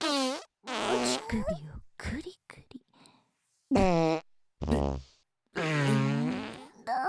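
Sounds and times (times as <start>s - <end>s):
loud buzzy farts: 0.0s - 1.2s, 3.8s - 6.7s
speech: 1.3s - 2.2s.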